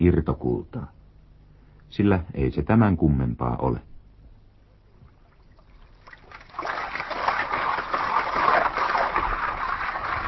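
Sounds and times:
speech: 0:00.0 - 0:01.0, 0:01.9 - 0:03.9
water sloshing and swirling in a shallow gold-panning pan: 0:05.0 - 0:10.2.

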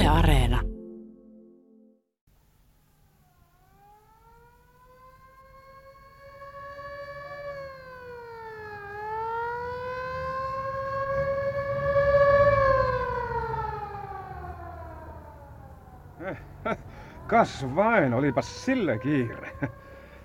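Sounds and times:
speech: 0:00.1 - 0:00.7, 0:17.3 - 0:19.8
ambulance siren wailing: 0:03.2 - 0:20.2
low traffic rumble: 0:04.3 - 0:20.2
laughter: 0:16.2 - 0:17.6, 0:19.0 - 0:19.9.

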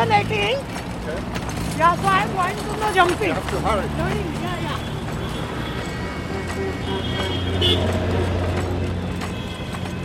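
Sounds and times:
traffic engines rumbling in a business district of Mumbai: 0:00.0 - 0:10.0
voices in a busy Mumbai street: 0:00.0 - 0:10.0
honking-like tones in Mumbai street traffic: 0:03.7 - 0:10.0.

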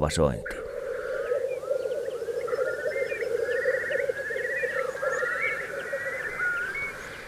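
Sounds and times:
speech: 0:00.0 - 0:00.6
black grouse lekking calls: 0:00.4 - 0:07.2
low bubbling cooing from several black grouse: 0:00.4 - 0:07.2.

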